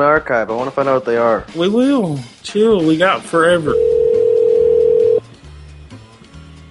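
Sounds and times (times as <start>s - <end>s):
speech: 0.0s - 3.9s
telephone dial tone while placing call: 3.8s - 5.2s.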